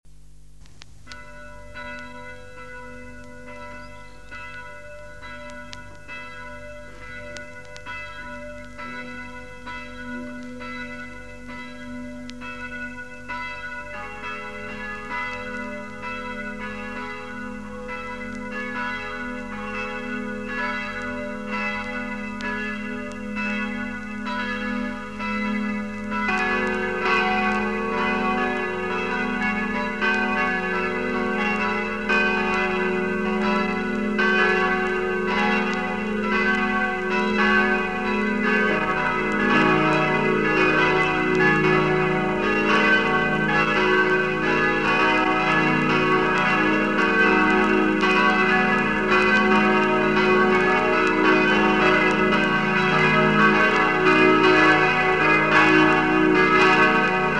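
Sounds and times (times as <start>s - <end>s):
new church bells ringing: 1.0s - 57.3s.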